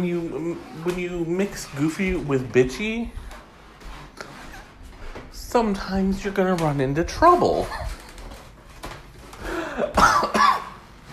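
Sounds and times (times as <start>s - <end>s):
speech: 0.0s - 3.2s, 5.5s - 7.9s
person coughing: 9.6s - 10.8s
person clearing throat: 9.8s - 10.8s.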